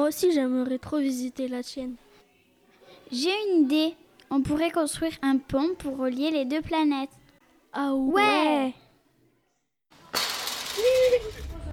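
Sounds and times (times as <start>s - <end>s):
speech: 0.1s - 2.0s, 3.1s - 8.8s, 10.8s - 11.4s
building crashing with shattering debris: 10.0s - 11.7s
rumble of falling rubble: 10.8s - 11.7s.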